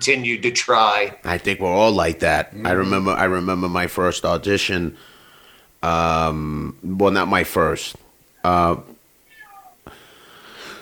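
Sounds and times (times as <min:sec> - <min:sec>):
speech: 0:00.0 - 0:05.1, 0:05.8 - 0:09.0
noise burst: 0:00.0 - 0:10.7
cat meowing: 0:09.2 - 0:09.8.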